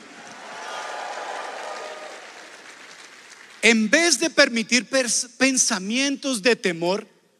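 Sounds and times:
large crowd shouting and cheering with joy: 0.0 - 3.6
speech: 3.6 - 7.1.

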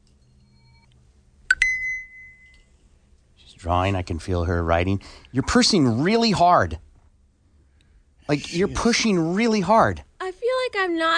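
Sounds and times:
long steady high-pitched timer tone: 1.5 - 2.6
electronic timer beeping: 1.5 - 2.7
speech: 3.6 - 6.8, 8.3 - 10.1, 10.7 - 11.1.

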